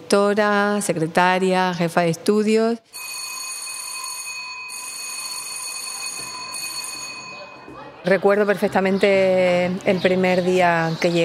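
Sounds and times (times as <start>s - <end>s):
speech: 0.1s - 3.1s, 8.0s - 11.2s
electric doorbell ringing: 3.0s - 7.7s.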